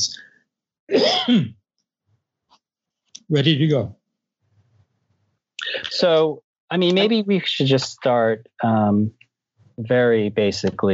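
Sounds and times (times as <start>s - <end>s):
person with a common cold clearing throat: 0.9s - 1.5s
short cough from a person with a common cold: 0.9s - 1.5s
speech: 0.9s - 1.6s, 3.3s - 4.0s, 5.9s - 9.2s, 9.8s - 10.9s.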